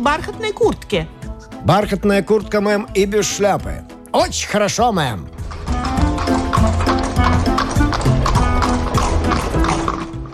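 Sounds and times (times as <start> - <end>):
speech: 0.0 - 5.6
horse hooves of a horse-drawn cab clip-clopping: 5.0 - 10.3.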